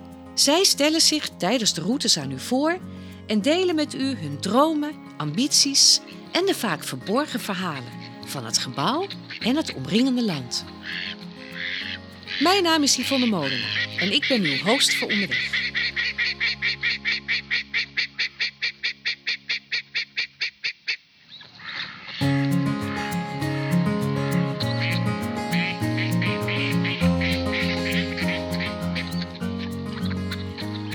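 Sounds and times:
music: 0.0 - 19.1, 22.2 - 30.9
speech: 0.4 - 11.2, 12.4 - 16.2
ducks quacking: 8.0 - 23.4, 24.4 - 30.9.

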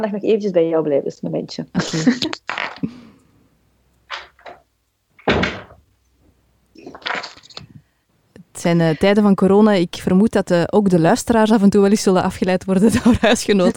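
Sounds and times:
speech: 0.0 - 3.0, 8.6 - 13.7
laughter: 1.8 - 2.4, 12.9 - 13.7
door closing: 4.1 - 4.6, 5.2 - 5.9.

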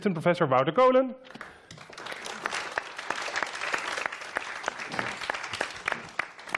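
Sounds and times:
speech: 0.0 - 1.8
audience applauding speakers on stage: 1.4 - 6.5.

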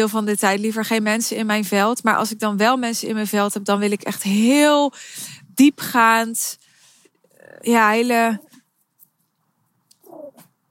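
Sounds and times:
speech: 0.0 - 6.6, 7.5 - 8.5
small pet dog whining: 10.0 - 10.5.

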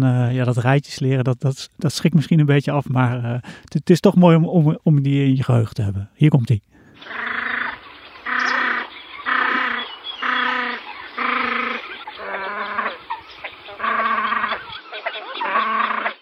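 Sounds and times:
speech: 0.0 - 7.3
great crested grebe calling with harsh nasal braying notes: 6.9 - 16.1.

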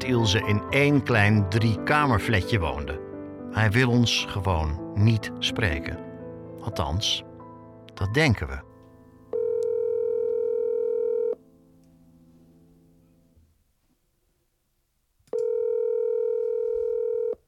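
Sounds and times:
speech: 0.0 - 7.3, 8.0 - 8.7
telephone ringing tone before call answered: 9.3 - 11.4, 15.3 - 17.4.

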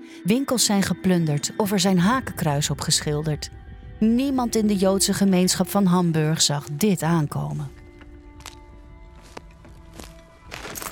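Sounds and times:
speech: 0.2 - 7.8
footsteps of two people walking to a synagogue: 7.8 - 10.9.

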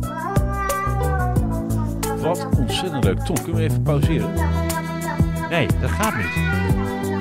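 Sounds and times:
cat meowing: 0.2 - 1.4
speech: 2.2 - 4.6, 5.5 - 7.1.

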